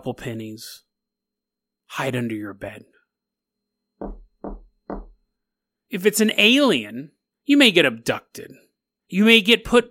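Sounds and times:
speech: 0:00.0 - 0:00.9, 0:01.9 - 0:03.0, 0:05.9 - 0:09.8
heavy knocks on a door: 0:04.0 - 0:05.3.

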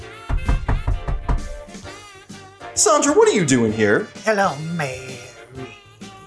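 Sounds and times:
firm knocking on a door: 0:00.0 - 0:01.9
speech: 0:02.8 - 0:05.0.

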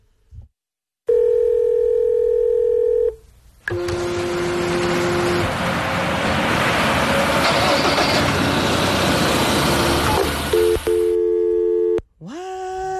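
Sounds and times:
telephone dial tone: 0:01.1 - 0:04.2, 0:10.5 - 0:12.0
rough engine-like noise: 0:03.6 - 0:11.1.

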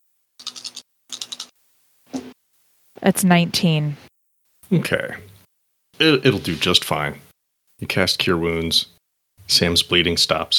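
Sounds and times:
dice tumbling across a tabletop: 0:00.4 - 0:01.5
speech: 0:03.0 - 0:04.0, 0:04.7 - 0:05.3, 0:06.0 - 0:07.2, 0:07.8 - 0:10.5.

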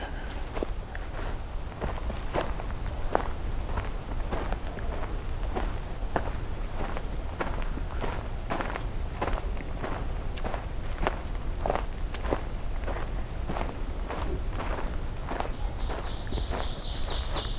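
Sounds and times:
crunching footsteps: 0:00.0 - 0:17.5
ovenbird singing: 0:09.0 - 0:11.1, 0:12.5 - 0:13.7, 0:15.3 - 0:17.5.

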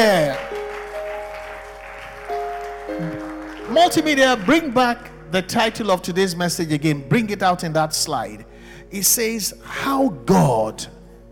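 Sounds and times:
speech: 0:00.0 - 0:00.5, 0:03.7 - 0:11.0
crowd applauding: 0:00.0 - 0:05.2.

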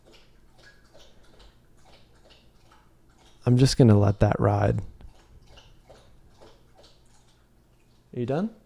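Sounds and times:
dog lapping water: 0:00.0 - 0:08.6
speech: 0:03.5 - 0:05.0, 0:08.2 - 0:08.6.

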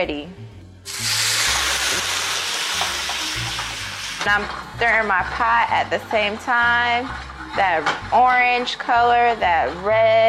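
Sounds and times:
speech: 0:00.0 - 0:01.2, 0:04.2 - 0:10.2
rum poured into a hot skillet to flambé, sizzling: 0:00.9 - 0:08.6.

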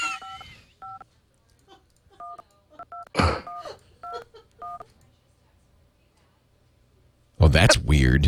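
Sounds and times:
phone keypad dialing beeps from an Android phone emulator: 0:00.1 - 0:01.0, 0:02.2 - 0:04.9
speech: 0:07.5 - 0:08.2.

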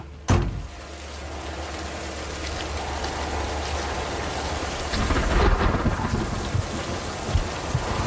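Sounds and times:
steady heavy rain pouring: 0:00.0 - 0:08.0
low rumbling thunder: 0:03.4 - 0:08.0.

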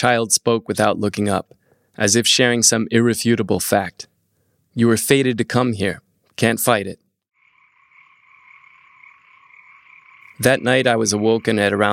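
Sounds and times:
speech: 0:00.0 - 0:04.1, 0:04.8 - 0:07.0, 0:10.4 - 0:11.9
chorus of thousands of frogs croaking at night: 0:07.4 - 0:11.9.

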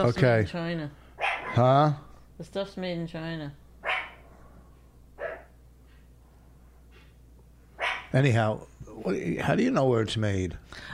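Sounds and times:
speech: 0:00.0 - 0:03.6, 0:08.1 - 0:10.9
dog barking: 0:01.2 - 0:01.7, 0:03.8 - 0:04.4, 0:05.2 - 0:05.6, 0:07.8 - 0:08.2.

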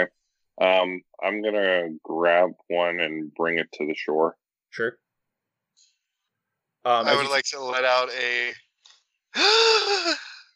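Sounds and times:
speech: 0:00.0 - 0:05.0, 0:06.8 - 0:08.6, 0:09.3 - 0:10.3
person gasping: 0:09.4 - 0:10.5.

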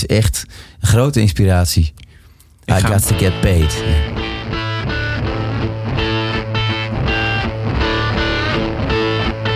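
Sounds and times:
speech: 0:00.0 - 0:02.0, 0:02.7 - 0:04.2
dense distorted electric guitars in a rock track: 0:02.7 - 0:09.5.

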